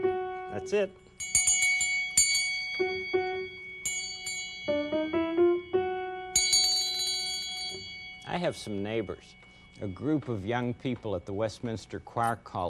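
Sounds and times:
speech: 0:00.6 - 0:01.1, 0:08.3 - 0:12.6
bell ringing an F sharp note: 0:01.0 - 0:10.8.

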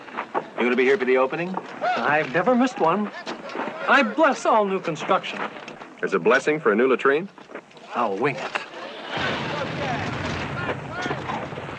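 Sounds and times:
speech: 0:00.6 - 0:03.3, 0:03.9 - 0:08.5
dull distant booms: 0:09.1 - 0:11.7
steady wash of rumbling noise: 0:09.1 - 0:11.7.

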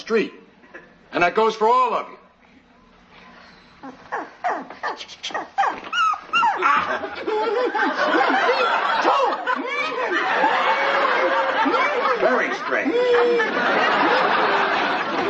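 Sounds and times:
speech: 0:00.1 - 0:00.4, 0:01.1 - 0:02.2, 0:04.9 - 0:15.2
dog whining and yelping excitedly: 0:03.5 - 0:07.1
dog yipping and barking: 0:03.8 - 0:06.9
laughter: 0:06.6 - 0:15.2.

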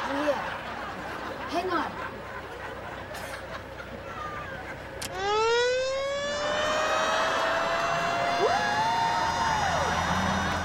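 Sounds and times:
fire truck engine rumble: 0:00.0 - 0:10.6
fire truck siren wailing: 0:05.0 - 0:10.6.

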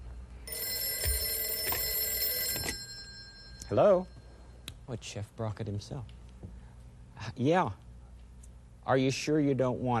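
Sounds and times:
telephone bell ringing: 0:00.5 - 0:04.4
speech: 0:03.7 - 0:04.2, 0:04.9 - 0:06.2, 0:07.4 - 0:07.8, 0:08.8 - 0:09.9.

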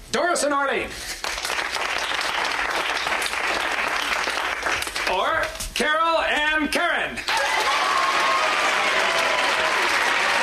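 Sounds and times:
speech: 0:00.1 - 0:01.2, 0:05.1 - 0:08.2
dense applause from a sizable audience: 0:01.2 - 0:05.4, 0:07.3 - 0:10.4.

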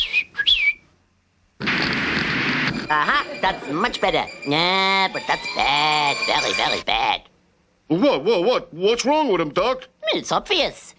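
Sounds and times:
person whistling sliding wavering notes: 0:00.0 - 0:00.8
loud steady rushing hiss: 0:01.6 - 0:06.8
speech: 0:02.9 - 0:07.3, 0:07.9 - 0:10.9.

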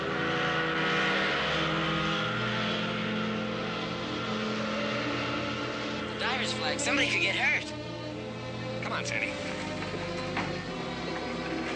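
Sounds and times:
ski boat engine passing by: 0:00.0 - 0:11.7
speech: 0:06.4 - 0:07.8, 0:09.0 - 0:09.5.

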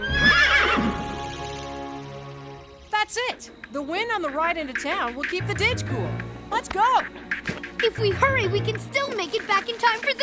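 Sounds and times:
horse neighing: 0:00.0 - 0:01.2
speech: 0:03.1 - 0:10.2.

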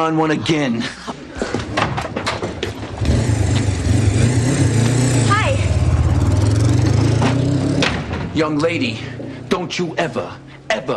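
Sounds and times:
speech: 0:00.0 - 0:01.6, 0:08.4 - 0:10.9
motorcycle engine revving: 0:03.0 - 0:08.1.

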